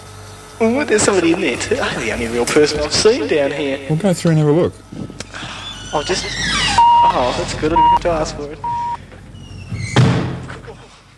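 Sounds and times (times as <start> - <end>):
speech: 0.6 - 8.7
glass door slamming shut: 9.9 - 10.4.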